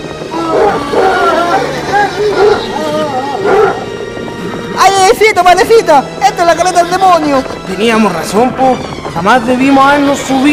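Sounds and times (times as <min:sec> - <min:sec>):
dog howling: 0:00.3 - 0:03.9
speech: 0:05.1 - 0:10.5.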